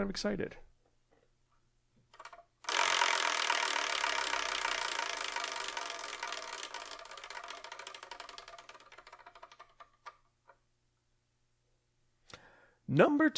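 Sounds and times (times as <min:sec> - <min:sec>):
somewhat loose prize wheel spinning: 0:02.2 - 0:10.2.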